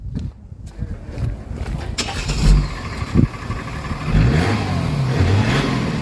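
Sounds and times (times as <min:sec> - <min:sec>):
Formula 1 driver transport car engine starting, revving and idling: 0:01.8 - 0:06.0.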